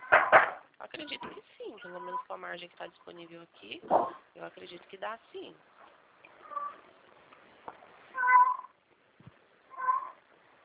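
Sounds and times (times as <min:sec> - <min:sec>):
speech: 0:00.8 - 0:05.8
cat meowing: 0:06.4 - 0:06.8, 0:08.1 - 0:08.8, 0:09.7 - 0:10.2.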